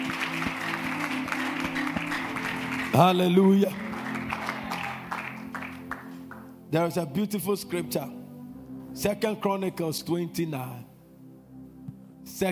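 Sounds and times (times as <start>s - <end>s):
congregation clapping: 0.0s - 6.6s
speech: 3.0s - 3.8s, 6.7s - 8.2s, 9.0s - 10.9s, 12.4s - 12.5s.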